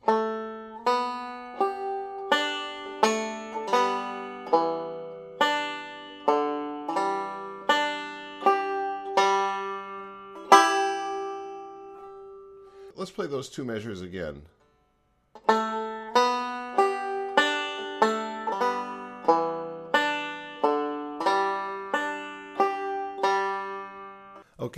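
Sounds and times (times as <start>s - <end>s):
fingerpicked guitar with hammer-on at the second fret: 0.0s - 12.9s, 15.3s - 24.4s
speech: 13.2s - 14.6s.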